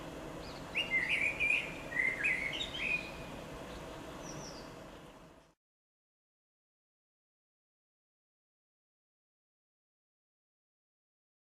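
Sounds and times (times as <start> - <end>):
quiet hissy background: 0.0 - 5.6
common blackbird singing fluty whistled phrase: 0.4 - 5.5.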